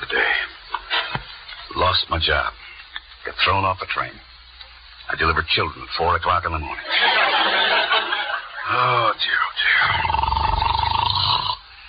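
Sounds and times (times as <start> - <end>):
speech: 1.8 - 2.6, 3.2 - 4.3, 5.1 - 8.1, 8.7 - 10.2
laughter: 6.8 - 9.1
man snoring: 9.7 - 11.6.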